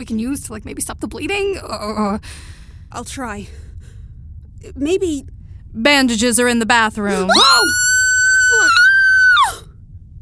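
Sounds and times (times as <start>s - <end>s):
speech: 0.0s - 3.7s, 4.6s - 7.8s
low rumbling background: 0.0s - 10.2s
person screaming high-pitched: 7.1s - 9.5s.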